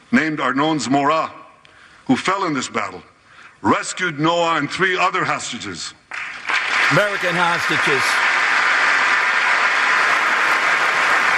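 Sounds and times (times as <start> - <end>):
speech: 0.1 - 1.4, 2.1 - 6.3, 6.9 - 8.2
large crowd applauding in a legislative chamber: 6.1 - 11.3.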